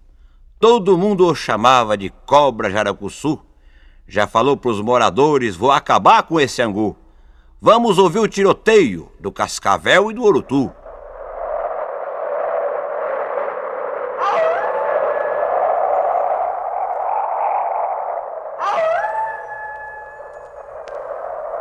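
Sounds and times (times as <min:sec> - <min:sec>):
speech: 0:00.6 - 0:03.5, 0:04.1 - 0:07.0, 0:07.6 - 0:10.8
strong wind roaring: 0:10.2 - 0:21.5.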